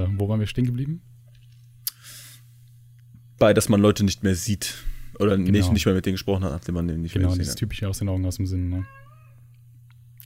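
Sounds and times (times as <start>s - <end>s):
low electrical hum: 0.0s - 10.2s
speech: 0.1s - 1.1s, 3.4s - 9.1s
cat meowing: 8.8s - 9.4s.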